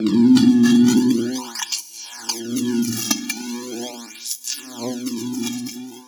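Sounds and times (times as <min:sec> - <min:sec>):
buzz: 0:00.1 - 0:06.0.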